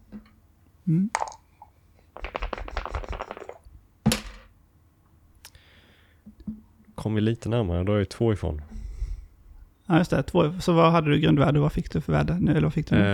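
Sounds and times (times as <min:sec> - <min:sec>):
speech: 0:00.9 - 0:01.4, 0:07.0 - 0:08.7, 0:09.9 - 0:13.1
dice clattering across a tabletop: 0:01.2 - 0:01.4, 0:02.2 - 0:04.5.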